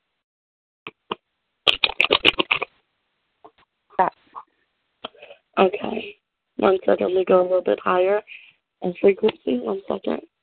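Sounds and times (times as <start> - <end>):
deck of tarot cards being shuffled: 1.7 - 2.7
speech: 5.6 - 10.3.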